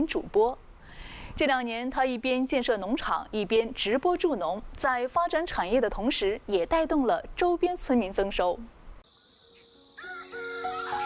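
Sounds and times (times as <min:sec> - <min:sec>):
speech: 0:00.0 - 0:00.6, 0:01.3 - 0:08.8
rooster crowing on a farm: 0:10.0 - 0:11.0.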